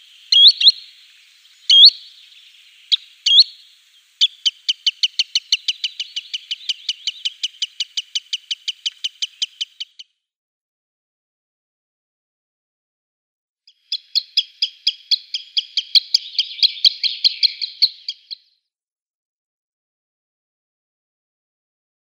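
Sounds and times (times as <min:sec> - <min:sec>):
green sandpiper calling with clipped high ticks: 0:00.0 - 0:10.1, 0:13.7 - 0:18.5.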